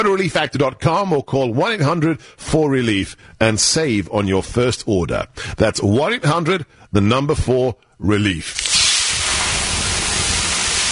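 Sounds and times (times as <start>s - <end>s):
speech: 0.0s - 8.7s
steam hiss from water poured on hot sauna rocks: 8.6s - 10.9s.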